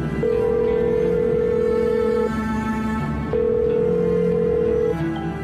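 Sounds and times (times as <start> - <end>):
electronic telephone ringing: 0.2 - 2.4, 3.3 - 5.3.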